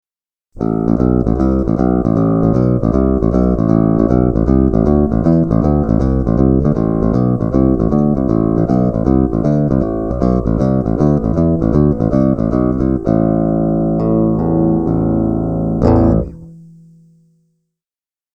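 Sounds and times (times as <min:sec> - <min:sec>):
bassblaster bass synth: 0:00.6 - 0:16.5.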